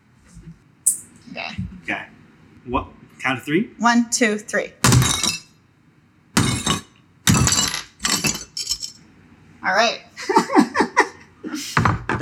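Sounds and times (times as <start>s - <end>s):
speech: 1.3s - 4.8s, 9.8s - 10.0s
foley glass breaking: 4.8s - 5.5s, 6.4s - 9.0s
foley object being smashed: 4.8s - 5.5s, 6.4s - 8.6s
laughter: 10.2s - 11.7s.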